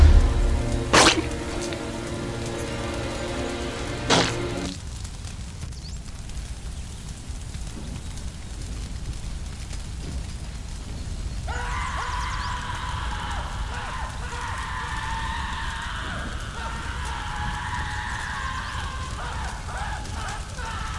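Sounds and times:
constant rumbling noise: 0.0 - 20.9
man screaming: 11.5 - 20.9.

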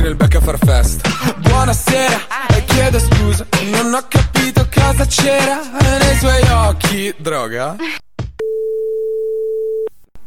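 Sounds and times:
speech: 0.5 - 8.1
steady telephone line tone before a call connects: 8.4 - 9.9.

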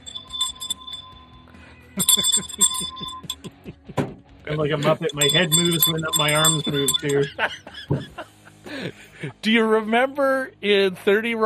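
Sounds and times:
metallic bell ringing: 0.0 - 3.5, 4.6 - 7.5
speech: 4.5 - 8.1, 8.8 - 11.4
laughter: 6.7 - 9.1.

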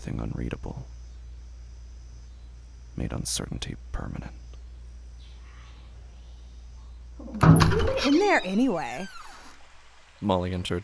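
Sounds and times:
speech: 0.0 - 1.0, 3.0 - 4.4, 7.2 - 9.2, 10.2 - 10.8
door swinging open: 7.4 - 8.4.

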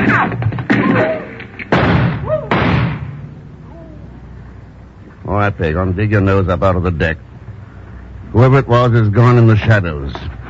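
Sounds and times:
faint whining ricochets: 0.0 - 3.2
loud sharp gunshots with decay: 0.0 - 3.2
speech: 5.4 - 7.3, 8.3 - 10.4.

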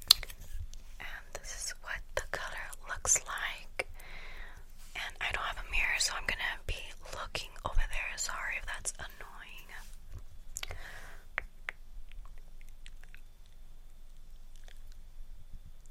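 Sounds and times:
low quiet hum: 0.0 - 15.9
wet sticky lip smacks from applying lipstick: 11.4 - 15.0.

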